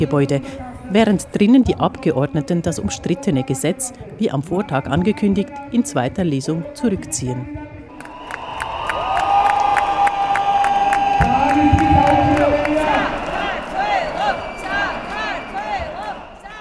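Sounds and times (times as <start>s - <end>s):
speech: 0.0s - 7.7s
large outdoor crowd cheering and chanting euphorically: 7.8s - 16.5s
sustained whistles: 7.9s - 16.5s.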